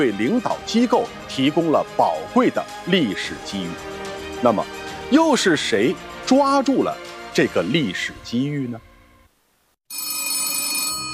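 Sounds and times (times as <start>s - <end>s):
speech: 0.0s - 8.9s
1960s telephone bell ringing late at night: 9.9s - 11.1s.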